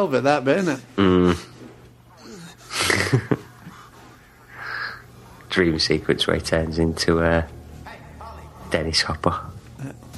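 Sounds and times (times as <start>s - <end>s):
speech: 0.0s - 1.5s, 5.6s - 7.6s, 8.7s - 9.9s
low steady hum: 0.0s - 10.1s
heavy agitated breathing with snorting bursts: 0.6s - 5.5s.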